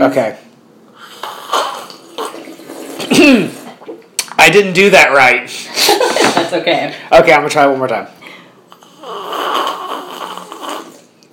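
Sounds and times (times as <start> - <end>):
speech: 0.0 - 0.4, 3.1 - 3.6, 4.4 - 5.7, 6.5 - 8.2
person slurping dark pour-over coffee to taste it: 1.0 - 3.8, 8.7 - 11.2.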